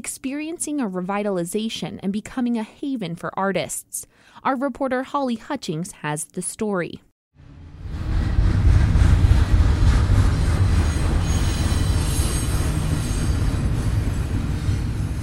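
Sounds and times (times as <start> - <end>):
speech: 0.0 - 7.1
train rumbling past behind former warehouses in an industrial area of Reno: 7.4 - 15.2
faint high train wheel squeals on the rails: 10.8 - 15.0.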